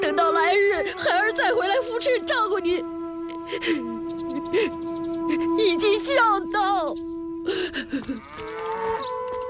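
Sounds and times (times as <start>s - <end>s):
speech: 0.1s - 9.2s
large yellow ox mooing, tied to a wooden post: 8.1s - 9.4s.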